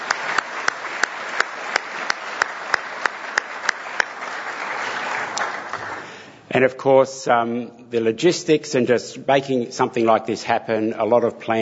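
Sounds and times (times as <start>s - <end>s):
audience applause: 0.0s - 6.2s
speech: 6.6s - 11.6s.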